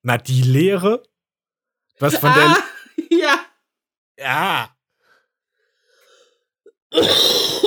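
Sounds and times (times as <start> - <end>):
speech: 0.0 - 1.1, 2.0 - 3.5, 4.2 - 4.8, 6.9 - 7.6
person coughing roughly: 6.9 - 7.6.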